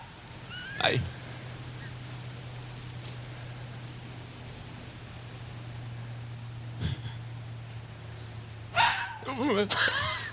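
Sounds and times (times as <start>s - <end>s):
steady low hum: 0.0s - 10.3s
speech: 0.8s - 1.2s, 9.4s - 10.0s
roe deer barking: 8.7s - 9.3s.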